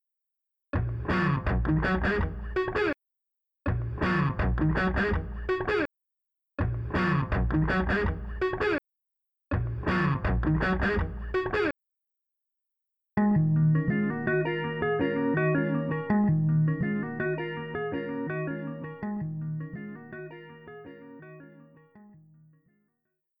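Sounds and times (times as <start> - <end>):
dry guitars: 0.8 - 2.9, 3.7 - 5.9, 6.6 - 8.8, 9.5 - 11.7, 13.2 - 21.8.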